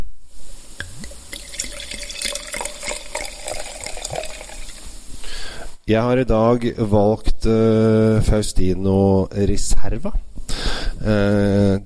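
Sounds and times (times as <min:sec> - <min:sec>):
red wine pouring into a glass: 0:00.8 - 0:05.3
speech: 0:05.9 - 0:10.2, 0:11.0 - 0:11.8.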